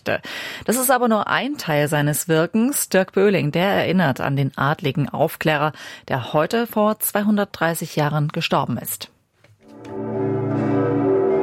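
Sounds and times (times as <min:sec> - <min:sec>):
speech: 0:00.0 - 0:09.1
church bells ringing: 0:10.0 - 0:11.4.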